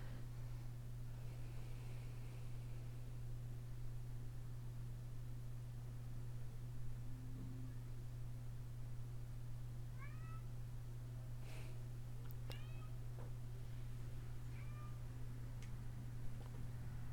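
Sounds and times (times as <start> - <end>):
steady low electrical hum: 0.0 - 17.1
cat meowing and whining at a door: 10.0 - 10.5, 12.5 - 13.0, 14.5 - 15.0.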